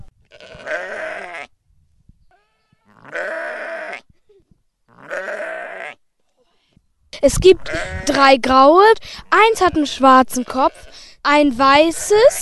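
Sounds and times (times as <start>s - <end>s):
Pomeranian and Icelandic sheep bleating with long quavering calls: 0.3s - 1.5s, 2.3s - 4.1s, 4.9s - 6.0s, 7.6s - 8.2s, 10.4s - 11.1s
speech: 7.2s - 12.3s.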